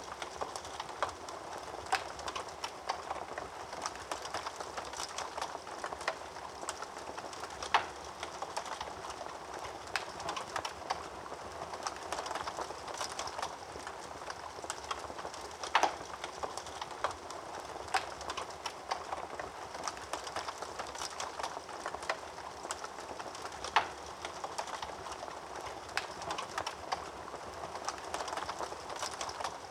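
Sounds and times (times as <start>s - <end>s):
household fire crackling: 0.0s - 29.6s.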